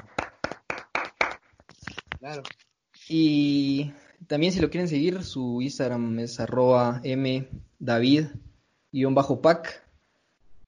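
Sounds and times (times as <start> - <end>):
hand claps from one or two people: 0.0 - 2.2
speech: 2.2 - 9.8.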